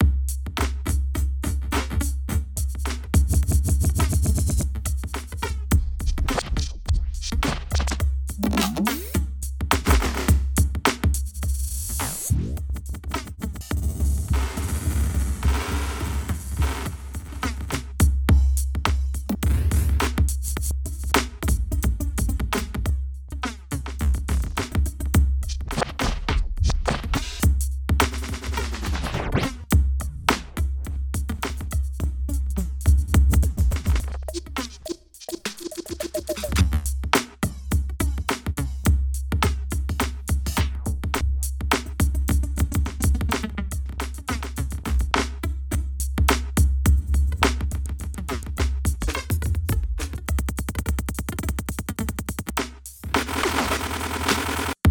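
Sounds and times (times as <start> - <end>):
drums playing: 0.0 - 54.8.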